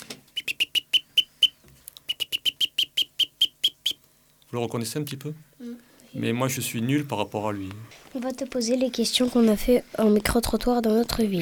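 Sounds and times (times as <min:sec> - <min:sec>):
person imitating a blackbird's alarm call: 0:00.4 - 0:04.0
speech: 0:04.5 - 0:11.3.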